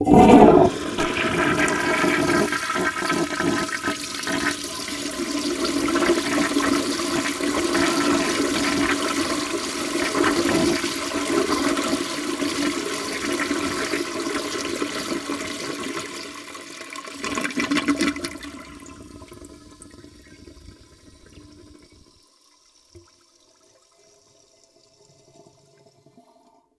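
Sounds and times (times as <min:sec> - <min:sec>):
long toilet flush: 0:00.0 - 0:26.7.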